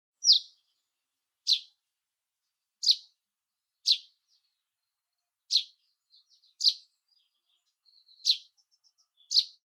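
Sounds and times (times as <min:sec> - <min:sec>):
soft bird twitters: 0:00.2 - 0:00.8, 0:01.4 - 0:01.8, 0:02.8 - 0:03.2, 0:03.8 - 0:09.6
russet sparrow chirping: 0:00.2 - 0:01.8, 0:02.8 - 0:03.2, 0:03.8 - 0:09.6.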